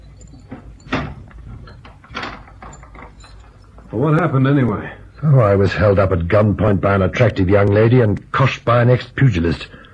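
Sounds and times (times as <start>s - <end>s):
door lock clack from the inside: 0.5s - 3.5s
door pushed shut with a solid thud: 0.6s - 1.3s
speech: 3.9s - 9.8s.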